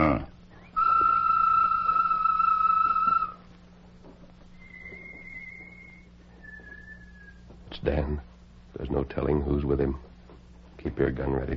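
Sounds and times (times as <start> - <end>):
low hum: 0.0 - 11.5
person whistling a bird call: 0.6 - 3.4, 4.6 - 7.4
speech: 7.8 - 8.3, 9.0 - 10.1, 10.8 - 11.5.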